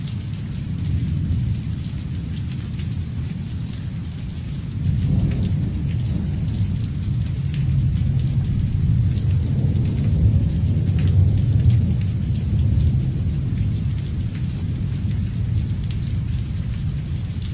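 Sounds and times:
steady rain: 0:00.0 - 0:17.5.

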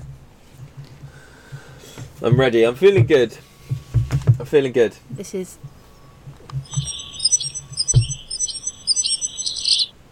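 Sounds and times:
speech: 0:02.2 - 0:03.5, 0:04.5 - 0:05.7
wren singing: 0:06.6 - 0:09.9.

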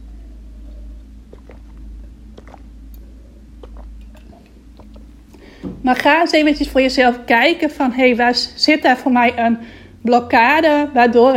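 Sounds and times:
person sipping water with wet mouth clicks and swallows: 0:00.0 - 0:05.6
low steady hum: 0:00.0 - 0:11.3
speech: 0:05.8 - 0:11.3.

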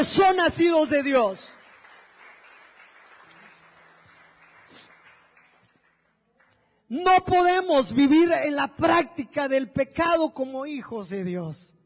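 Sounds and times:
speech: 0:00.0 - 0:01.6, 0:06.9 - 0:11.7
church audience applauding: 0:01.3 - 0:06.6.

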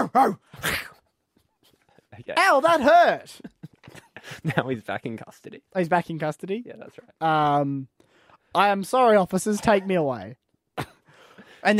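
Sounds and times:
speech: 0:00.0 - 0:00.9, 0:02.2 - 0:03.6, 0:04.2 - 0:10.9
human voice mimicking a dog biting a man: 0:00.0 - 0:01.0.

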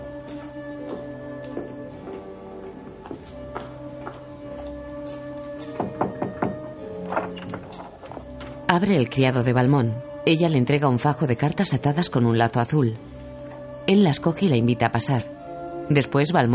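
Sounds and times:
soft sustained music: 0:00.0 - 0:16.5
dull knocks on a wooden door in a corridor at night: 0:05.6 - 0:06.8
speech: 0:08.8 - 0:13.2, 0:13.9 - 0:16.5.

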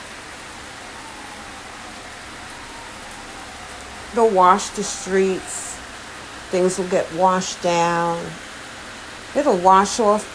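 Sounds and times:
steady rain falling: 0:00.0 - 0:10.3
speech: 0:04.1 - 0:05.7, 0:06.5 - 0:08.5, 0:09.3 - 0:10.3.

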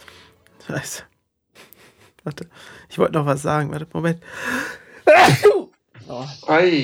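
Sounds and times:
speech: 0:00.7 - 0:01.1, 0:02.2 - 0:06.8
person sneezing: 0:05.1 - 0:06.3.

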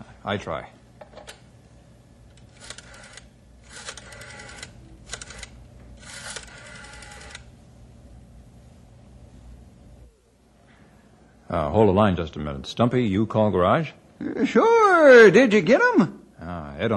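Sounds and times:
speech: 0:00.2 - 0:00.8, 0:11.5 - 0:16.9
numbering machine being operated: 0:02.3 - 0:07.5.

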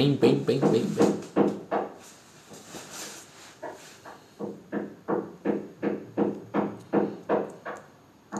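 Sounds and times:
speech: 0:00.0 - 0:01.1
neighbour hammering while doing DIY: 0:00.3 - 0:02.0, 0:03.6 - 0:07.8.

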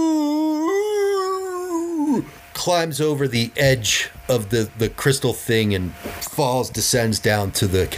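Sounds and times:
eerie inhuman howl from a large white unshapely creature writhing: 0:00.0 - 0:02.4
speech: 0:02.2 - 0:07.9.

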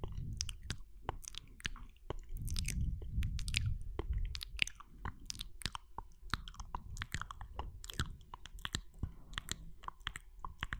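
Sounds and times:
soft low rumble of breath or movement: 0:00.0 - 0:10.7
wet mouth smacks, clicks and tongue pops: 0:00.0 - 0:10.7.

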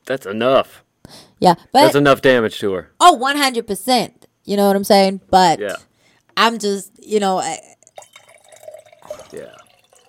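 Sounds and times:
speech: 0:00.1 - 0:07.8, 0:09.3 - 0:09.6
water being poured into a glass: 0:07.7 - 0:10.0.

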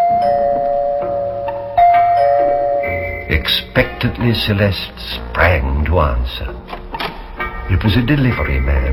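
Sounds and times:
doorbell chime ringing at a home: 0:00.0 - 0:03.4
speech: 0:03.3 - 0:06.6, 0:07.7 - 0:08.9.

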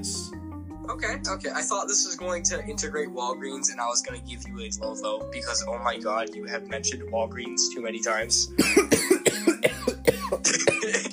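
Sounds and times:
speech: 0:00.0 - 0:09.8
man coughing: 0:08.6 - 0:11.1.

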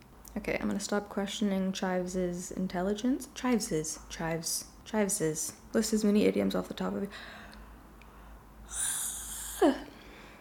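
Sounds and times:
speech: 0:00.4 - 0:07.4
person yawning: 0:08.7 - 0:10.0.

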